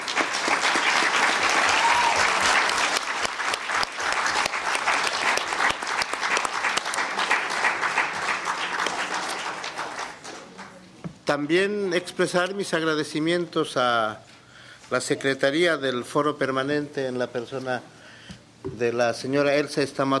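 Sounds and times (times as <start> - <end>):
large audience applause: 0.0 - 10.8
speech: 11.3 - 14.3, 14.9 - 17.9, 18.7 - 20.1.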